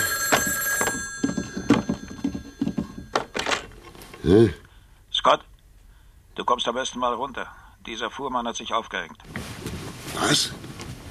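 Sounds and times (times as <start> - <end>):
telephone bell ringing at a farm outside a town: 0.0 - 3.6
speech: 4.2 - 4.6, 5.2 - 5.5, 6.4 - 9.4, 10.1 - 10.6.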